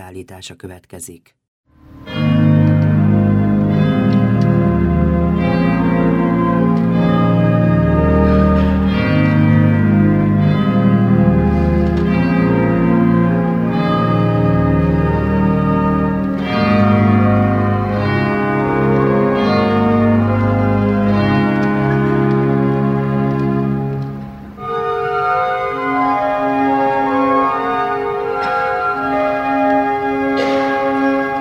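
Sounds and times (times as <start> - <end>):
speech: 0.0 - 1.4
pipe organ playing a bell-themed Christmas piece: 2.0 - 31.3.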